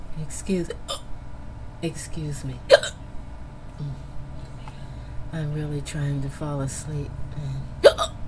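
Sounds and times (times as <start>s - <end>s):
speech: 0.2s - 1.0s, 1.8s - 3.0s, 3.8s - 4.1s, 5.3s - 7.5s
hiccups: 2.7s - 3.0s, 7.8s - 8.2s.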